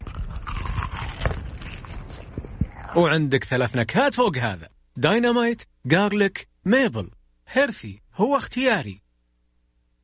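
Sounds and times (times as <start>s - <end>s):
crunching bite into a fried chicken fillet: 0.0s - 3.0s
speech: 2.9s - 9.0s.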